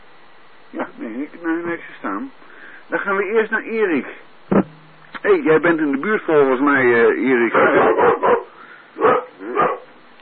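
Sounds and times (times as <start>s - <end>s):
speech: 0.7s - 9.7s
dog barking: 7.5s - 10.0s.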